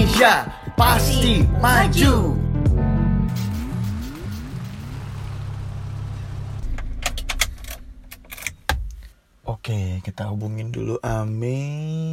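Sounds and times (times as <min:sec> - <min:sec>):
speech: 0:00.2 - 0:02.4, 0:09.6 - 0:12.1
car engine hum as a car pulls up and parks outside a house: 0:03.3 - 0:09.0
sharp clicks and rattles: 0:06.6 - 0:09.1.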